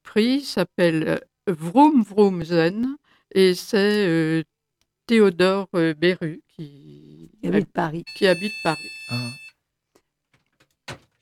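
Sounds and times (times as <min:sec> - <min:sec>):
speech: 0:00.1 - 0:09.4
vocal exclamation: 0:06.6 - 0:07.6
studio telephone ringing with an electronic buzzing tone: 0:08.1 - 0:09.5.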